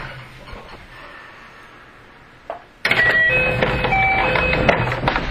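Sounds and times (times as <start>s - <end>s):
223 series 2000 train door opening with rattling sound: 2.9s - 5.2s.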